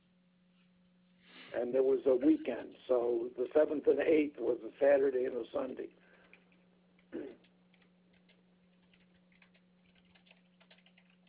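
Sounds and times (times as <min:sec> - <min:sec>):
speech: 0:01.5 - 0:06.0
fingers typing on a computer keyboard: 0:07.7 - 0:11.2.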